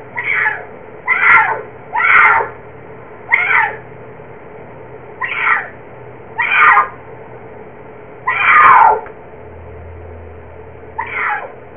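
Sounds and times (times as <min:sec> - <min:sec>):
puma cry: 0:00.2 - 0:02.6, 0:03.3 - 0:03.8, 0:05.2 - 0:05.8, 0:06.4 - 0:07.0, 0:08.2 - 0:09.1, 0:11.0 - 0:11.6.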